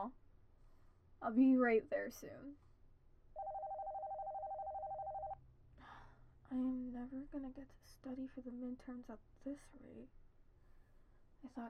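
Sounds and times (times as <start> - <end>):
speech: 0.0 - 0.2, 1.2 - 2.6, 6.5 - 10.2, 11.4 - 11.6
telephone ringing with a warbling electronic tone: 3.4 - 5.4.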